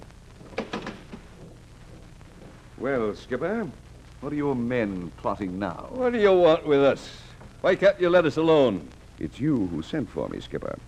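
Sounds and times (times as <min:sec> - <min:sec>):
wooden door being opened: 0:00.4 - 0:02.0
speech: 0:02.8 - 0:10.8.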